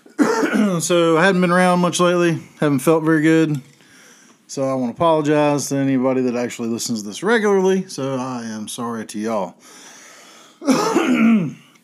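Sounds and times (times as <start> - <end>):
rough throat clearing: 0.1 - 0.8, 10.6 - 11.8
speech: 0.7 - 3.7, 4.5 - 9.9, 10.6 - 11.6.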